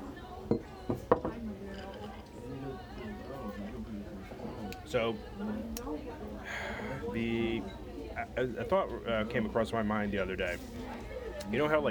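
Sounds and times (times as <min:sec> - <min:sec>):
low hum of chatter and faint voices: 0:00.0 - 0:11.8
glasses clinking in a toast: 0:00.5 - 0:02.2
speech: 0:04.9 - 0:06.2, 0:07.0 - 0:11.8.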